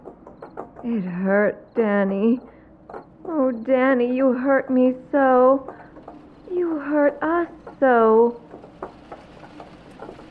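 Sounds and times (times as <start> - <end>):
low steady hush: 0.0 - 10.2
speech: 0.8 - 5.8, 6.6 - 8.4
light rain drops tapping on a surface: 4.6 - 10.2.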